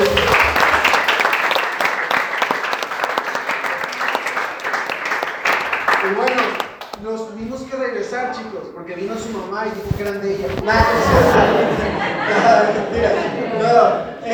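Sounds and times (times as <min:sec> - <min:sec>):
laughter: 0:00.0 - 0:02.5, 0:10.6 - 0:14.3
group applauding: 0:00.0 - 0:07.0
speech: 0:08.5 - 0:11.8.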